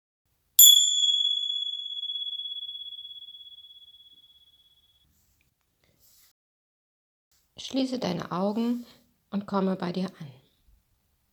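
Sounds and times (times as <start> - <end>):
meditation bell ringing with a bright metallic tone: 0.6 - 3.7
speech: 7.6 - 10.4.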